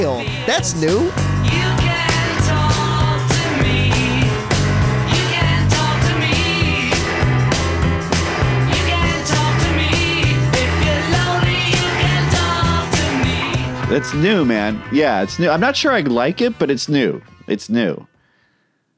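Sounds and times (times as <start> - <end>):
speech: 0.0 - 1.8, 13.9 - 18.1
bass: 0.0 - 18.1
loud full-band remixed rock song: 0.0 - 18.4.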